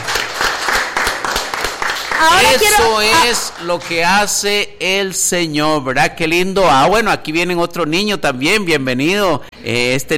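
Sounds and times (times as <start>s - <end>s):
church congregation applauding on the fourth floor of a building: 0.0s - 4.2s
speech: 2.2s - 10.1s.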